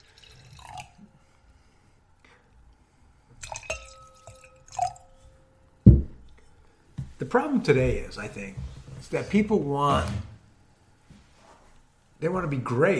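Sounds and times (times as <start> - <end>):
liquid splashing and trickling into a glass: 0.0 - 1.1, 3.4 - 5.4
thud: 5.9 - 6.2
speech: 7.3 - 10.3, 12.2 - 12.9.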